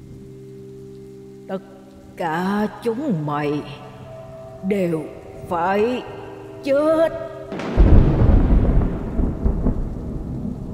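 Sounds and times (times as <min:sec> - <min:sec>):
speech: 0:01.5 - 0:03.8, 0:04.6 - 0:07.8
loud deep rolling thunder from a storm at night: 0:07.4 - 0:10.7.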